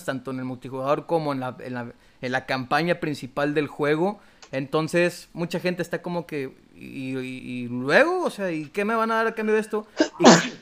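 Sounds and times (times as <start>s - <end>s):
speech: 0.0s - 10.6s
sneeze: 10.0s - 10.6s.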